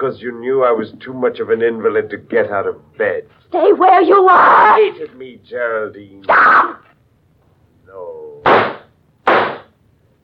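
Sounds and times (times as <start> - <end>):
speech: 0.0 - 6.8
gunshots: 8.4 - 9.8.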